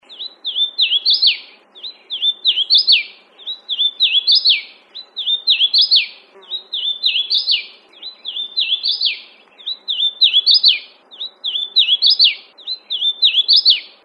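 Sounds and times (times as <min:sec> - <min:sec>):
Hooded Warbler: 0:00.0 - 0:14.0.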